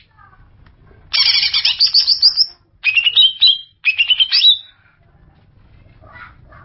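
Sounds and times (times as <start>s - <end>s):
greater green leafbird singing: 1.1s - 4.7s.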